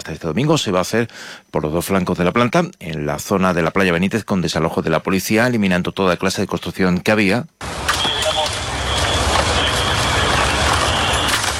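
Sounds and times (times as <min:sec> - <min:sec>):
speech: 0:00.0 - 0:07.9
heavy trucks and machinery working clearing belongings and debris near a beach: 0:07.6 - 0:11.5.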